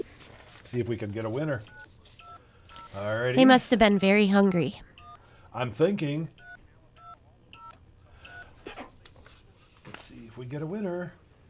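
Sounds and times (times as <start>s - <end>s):
low hum: 0.0s - 11.4s
speech: 0.7s - 1.8s, 2.9s - 4.9s, 5.5s - 6.4s, 10.4s - 11.2s
telephone keypad dialing tones: 1.7s - 5.2s, 6.4s - 8.6s.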